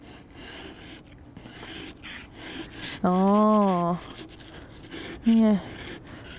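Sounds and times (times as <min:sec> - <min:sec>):
hard edge of a car-supplied tool scraping something off: 0:00.0 - 0:06.3
speech: 0:03.0 - 0:04.2, 0:05.2 - 0:05.7.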